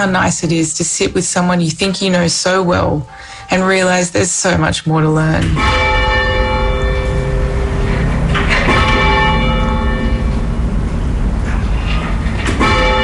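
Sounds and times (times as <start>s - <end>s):
speech: 0.0s - 6.1s
church bells pealing: 5.4s - 13.0s.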